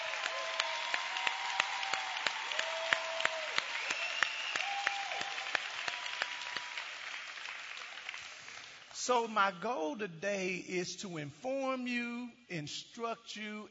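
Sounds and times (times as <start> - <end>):
crowd applauding: 0.0 - 9.0
speech: 9.0 - 13.6.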